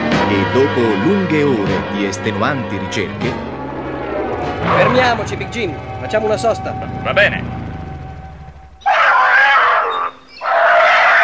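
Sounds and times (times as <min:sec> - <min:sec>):
speech: 0:00.3 - 0:03.5, 0:04.6 - 0:07.6
frightened tiger cub crying out: 0:08.7 - 0:11.2.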